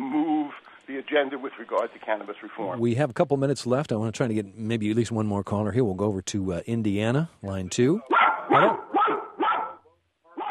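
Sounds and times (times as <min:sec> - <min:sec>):
speech: 0:01.0 - 0:08.8
dog barking over a caller's phone line: 0:08.1 - 0:10.4.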